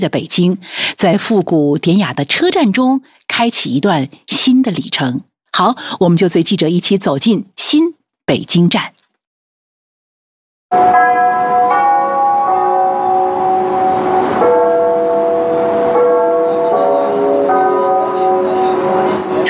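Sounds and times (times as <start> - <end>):
speech: 0.0 - 8.9, 10.7 - 11.3
railway station clock tower bells chiming a slow stately melody: 10.8 - 19.4.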